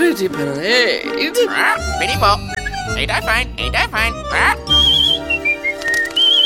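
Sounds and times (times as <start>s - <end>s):
speech: 0.2s - 4.9s
cockatoo chattering in raspy voice-like squawks: 1.0s - 5.6s
cockatoo giving thin high whistles: 4.7s - 6.4s.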